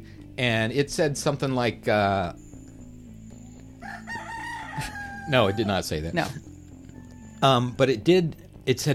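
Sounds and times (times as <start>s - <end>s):
speech: 0.4s - 2.4s, 4.8s - 6.4s, 7.4s - 8.9s
rooster crowing: 3.8s - 5.8s.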